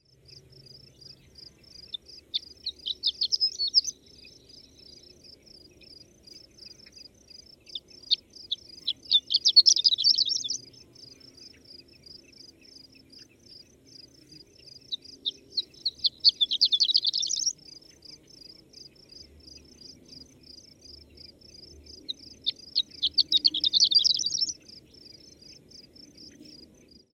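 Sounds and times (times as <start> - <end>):
horned lark calling: 1.7 - 4.9, 7.7 - 10.7, 14.8 - 17.6, 22.0 - 25.5.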